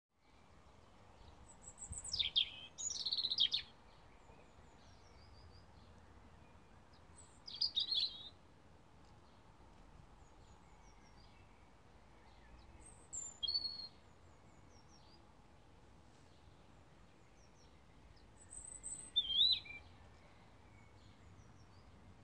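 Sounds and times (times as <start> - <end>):
European robin singing: 1.2 - 5.7, 6.9 - 8.4, 12.2 - 15.2, 17.2 - 21.9.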